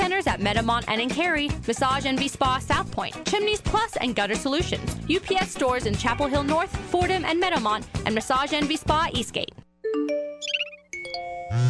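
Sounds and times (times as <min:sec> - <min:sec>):
speech: 0:00.3 - 0:10.2
phone text message notification chimes: 0:09.9 - 0:11.6.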